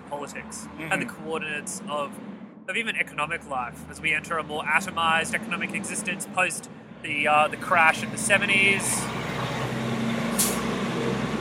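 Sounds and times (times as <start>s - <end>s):
speech: 0.2s - 9.5s
loud truck rumbling past: 0.4s - 11.3s
short sharp hiss of an air brake: 10.3s - 10.7s.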